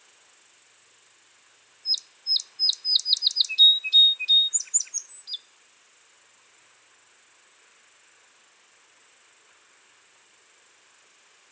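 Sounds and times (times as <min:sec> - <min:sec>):
constant high-pitched background hiss: 0:00.0 - 0:11.5
Song sparrow Melospiza melodia singing: 0:01.9 - 0:05.4.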